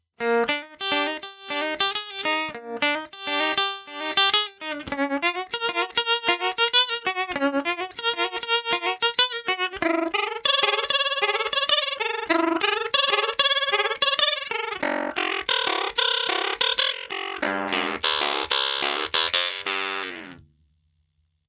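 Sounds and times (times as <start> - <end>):
ring modulator sound with rising frequency: 0.2 - 20.4.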